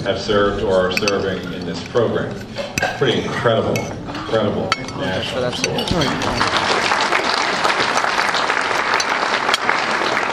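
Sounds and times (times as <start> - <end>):
speech: 0.0 - 6.7
large crowd applauding at a pep rally: 5.9 - 10.3.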